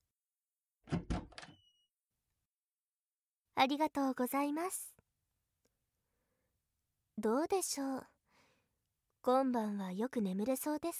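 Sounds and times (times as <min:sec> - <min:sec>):
room door latch and handle clunking and rattling: 0:00.9 - 0:01.6
room door creaking as it swings: 0:00.9 - 0:01.8
speech: 0:03.6 - 0:05.0, 0:07.2 - 0:08.1, 0:09.2 - 0:10.9.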